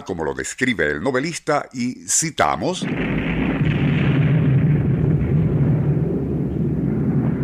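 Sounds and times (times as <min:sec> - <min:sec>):
speech: 0:00.0 - 0:03.8
massive explosion with deep rumbling roar: 0:02.8 - 0:07.4.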